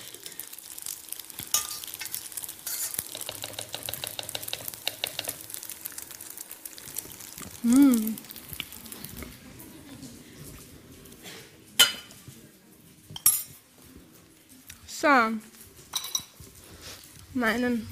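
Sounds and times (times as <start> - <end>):
spoon scraping and clinking against a pot while scooping food: 1.5 - 5.3
speech: 7.6 - 8.2, 17.4 - 17.9.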